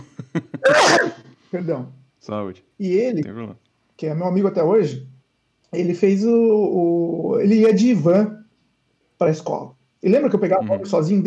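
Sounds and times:
person laughing: 0.0s - 0.8s
person sneezing: 0.0s - 1.4s
speech: 0.4s - 5.1s, 5.7s - 8.4s, 9.2s - 11.2s.

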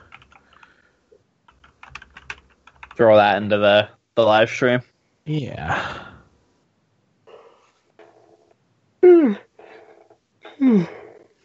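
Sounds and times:
speech: 3.0s - 6.0s
breathy murmur: 5.4s - 6.2s, 7.2s - 8.2s, 9.0s - 11.4s
person yawning: 9.0s - 9.4s, 10.5s - 11.1s.

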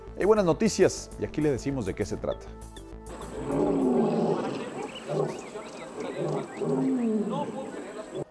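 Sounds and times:
speech: 0.2s - 2.8s
lions tigers and jaguars roaring and growling at a refuge in Mexico City: 3.1s - 8.2s.

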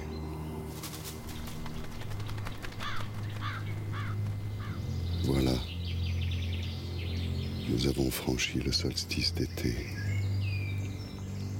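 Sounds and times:
low constant hum: 0.0s - 11.5s
crow perched on a branch cawing: 2.7s - 5.0s
speech: 7.8s - 10.1s.

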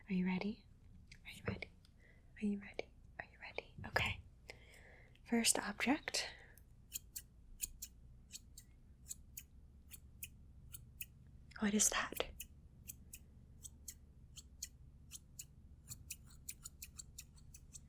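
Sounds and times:
speech: 0.1s - 0.7s, 2.4s - 2.8s, 5.3s - 6.4s, 11.6s - 12.3s
scissors snipping: 6.9s - 11.1s, 12.2s - 17.8s.

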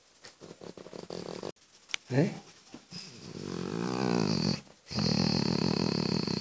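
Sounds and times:
dog lying down groaning while being petted: 0.4s - 1.6s, 3.0s - 6.3s
speech: 2.1s - 2.5s.

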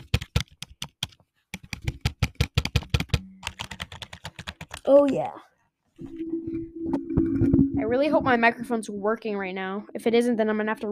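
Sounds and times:
typing on a computer keyboard: 0.0s - 5.2s
speech: 4.8s - 6.2s, 7.8s - 10.9s.

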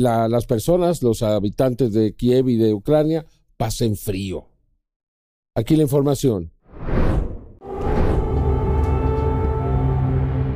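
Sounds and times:
speech: 0.0s - 4.5s, 5.6s - 6.9s
brief rushing whooshes: 6.7s - 8.8s
air raid sirens in Kyiv during a Russian attack: 7.6s - 10.5s.

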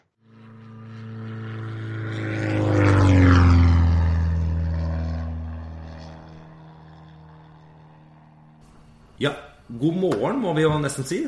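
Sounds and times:
propeller airplane flying past: 0.0s - 11.2s
speech: 9.2s - 11.2s.

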